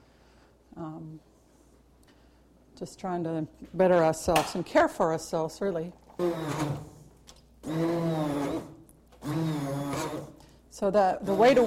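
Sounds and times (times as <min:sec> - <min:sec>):
speech: 0:02.8 - 0:06.9, 0:10.8 - 0:11.6
electric blender blade chopping food: 0:06.2 - 0:06.9, 0:07.6 - 0:10.4, 0:11.2 - 0:11.6.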